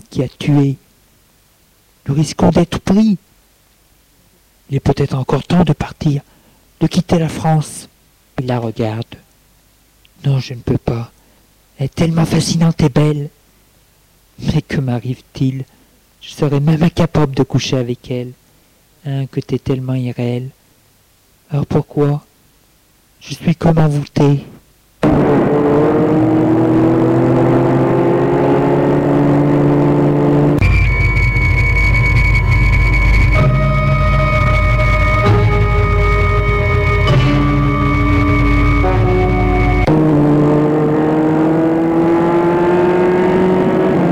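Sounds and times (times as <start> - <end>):
speech: 0.2 - 0.8, 2.0 - 3.3, 4.7 - 9.1, 10.2 - 11.2, 11.8 - 13.4, 14.4 - 18.4, 19.0 - 20.6, 21.5 - 22.3, 23.2 - 25.8
loud car engine humming as the vehicle drives along the coast: 25.0 - 44.0.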